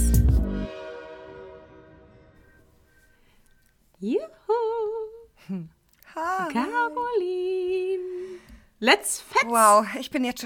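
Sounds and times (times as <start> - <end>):
train horn: 0.5 - 2.5
speech: 4.0 - 4.4, 5.5 - 7.7, 8.8 - 10.4.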